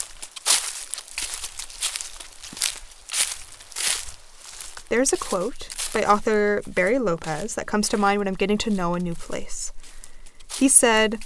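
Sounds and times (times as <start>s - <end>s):
footsteps crunching and rustling on forest ground: 0.0s - 11.2s
speech: 4.9s - 9.7s, 10.6s - 11.2s.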